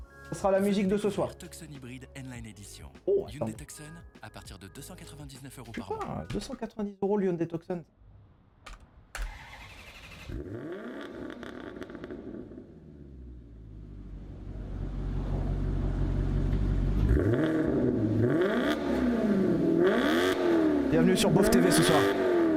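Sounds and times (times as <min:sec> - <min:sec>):
speech: 0:00.3 - 0:08.1, 0:10.3 - 0:11.4, 0:21.2 - 0:22.3
V8 engine cranking and firing up: 0:08.7 - 0:22.5.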